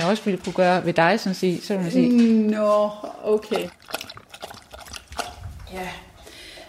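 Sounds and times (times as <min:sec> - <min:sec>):
speech: 0:00.1 - 0:04.0, 0:05.7 - 0:06.1
dog lapping water from a bowl: 0:03.0 - 0:05.7.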